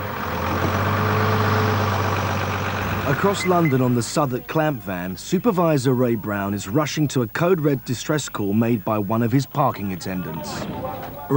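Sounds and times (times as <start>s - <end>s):
council tow truck engine running in Brent North London: 0.0s - 11.3s
speech: 3.1s - 11.3s.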